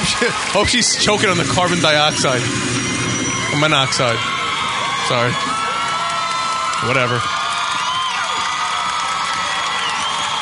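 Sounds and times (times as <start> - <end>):
speech: 0.1 - 4.4, 5.1 - 5.6, 6.8 - 7.4
audience cheers and whoops: 3.1 - 10.3
audience clapping: 3.8 - 10.3.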